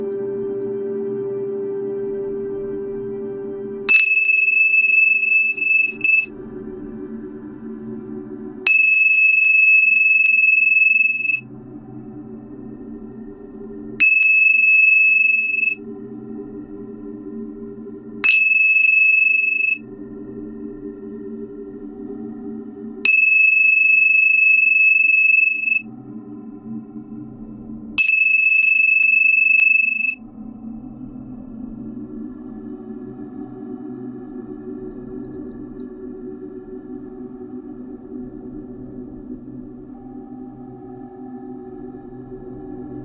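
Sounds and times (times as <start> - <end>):
low humming drone: 0.0 - 43.0
meditation chime ringing: 3.9 - 6.3, 8.7 - 11.4, 14.0 - 15.8, 18.2 - 19.8, 23.1 - 25.8, 28.0 - 30.2.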